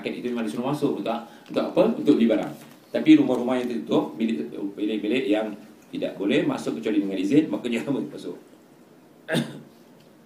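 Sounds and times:
speech: 0:00.0 - 0:08.5, 0:09.3 - 0:09.6
cough: 0:09.3 - 0:09.8.

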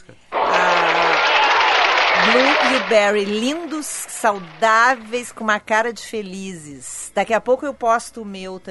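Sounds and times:
small group applauding enthusiastically: 0:00.4 - 0:05.5
speech: 0:02.7 - 0:08.6.

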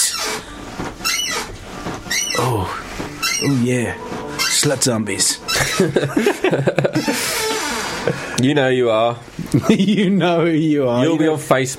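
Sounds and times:
chair squeaking and creaking: 0:00.0 - 0:08.4
speech: 0:02.4 - 0:11.7
laughter: 0:05.5 - 0:08.4, 0:09.4 - 0:10.4.

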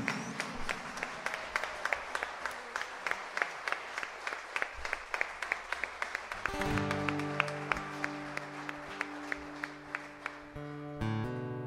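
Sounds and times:
audience clapping rhythmically in praise of God: 0:00.0 - 0:11.5.

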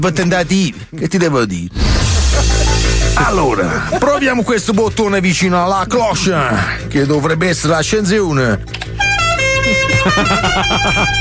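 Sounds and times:
speech: 0:00.0 - 0:08.8, 0:10.0 - 0:11.1
laughter: 0:02.1 - 0:04.4, 0:09.6 - 0:11.1
loud car horn blaring: 0:09.0 - 0:10.3.

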